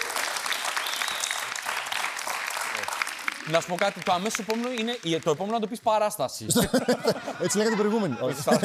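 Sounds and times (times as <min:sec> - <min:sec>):
crowd clapping: 0:00.0 - 0:06.2
speech: 0:03.5 - 0:08.6
laughter: 0:06.4 - 0:08.6.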